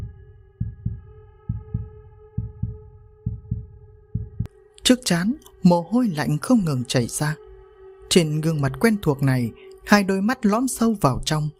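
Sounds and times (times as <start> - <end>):
fast heartbeat sound effect in a horror story: 0.0 - 4.5
speech: 4.9 - 7.4, 8.1 - 11.5.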